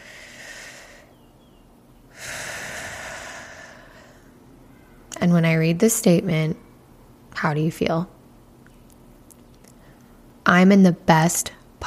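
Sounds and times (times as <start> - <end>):
people taking a deep breath together during a guided group exercise: 0.0 - 1.1, 2.1 - 4.4
speech: 5.2 - 6.6, 7.4 - 8.2, 10.5 - 11.8.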